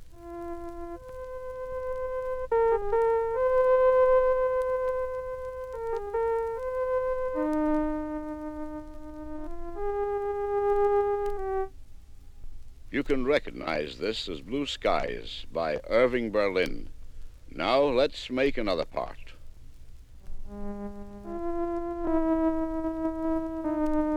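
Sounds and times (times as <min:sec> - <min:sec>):
synthesized melody of steady electronic tones: 0:00.2 - 0:11.7, 0:20.5 - 0:24.1
speech: 0:13.0 - 0:16.9, 0:17.6 - 0:19.2.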